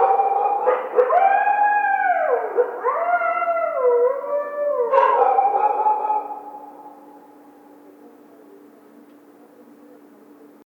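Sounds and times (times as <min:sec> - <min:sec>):
coyote howling: 0:00.0 - 0:08.2.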